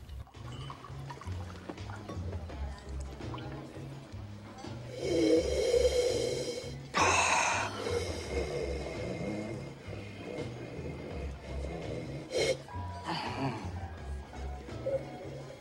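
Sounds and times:
low rhythmic hum: 0:00.0 - 0:15.5
wine pouring into a glass: 0:00.1 - 0:04.0.

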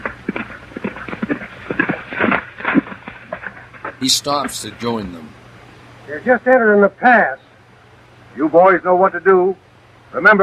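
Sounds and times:
horse galloping in the desert: 0:00.0 - 0:04.0
speech: 0:04.0 - 0:05.4, 0:06.1 - 0:07.4, 0:08.4 - 0:10.4.

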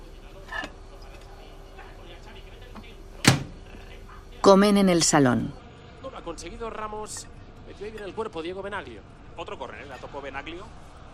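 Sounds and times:
faint steady hum: 0:00.0 - 0:11.1
microwave door popping open with a soft click: 0:03.2 - 0:03.6
speech: 0:04.5 - 0:05.6, 0:06.4 - 0:10.8.

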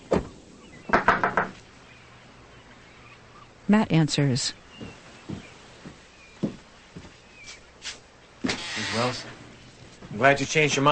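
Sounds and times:
knocking on the screen door of a house: 0:00.9 - 0:01.6
speech: 0:03.7 - 0:04.6, 0:09.0 - 0:09.4, 0:10.2 - 0:10.9.

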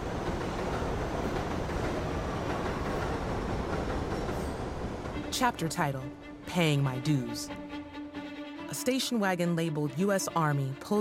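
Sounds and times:
elevated train rumbling past a brick building: 0:00.0 - 0:10.9
speech: 0:05.4 - 0:07.6, 0:08.7 - 0:10.9.

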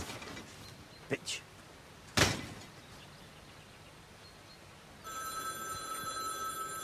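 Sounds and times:
speech: 0:01.1 - 0:01.5
sharp thump: 0:02.2 - 0:02.6
telephone ringing with a bright electronic trill: 0:05.0 - 0:06.8.

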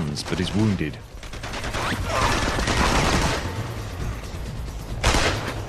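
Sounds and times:
speech: 0:00.2 - 0:01.1
gunfire from pursuers shooting at a fleeing man during a rooftop chase: 0:00.2 - 0:03.8, 0:05.0 - 0:05.5.

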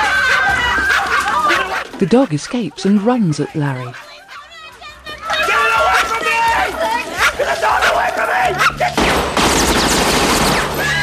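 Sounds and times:
laughter: 0:00.0 - 0:09.0
speech: 0:02.0 - 0:04.1
gunshot fired accidentally: 0:09.0 - 0:10.8.

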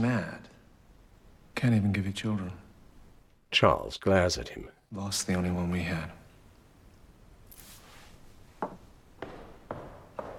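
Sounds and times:
speech: 0:00.0 - 0:00.5, 0:01.6 - 0:02.6, 0:03.5 - 0:06.2
faint rustle: 0:07.5 - 0:08.6
footsteps marching on a hard floor down a corridor: 0:08.6 - 0:10.3.

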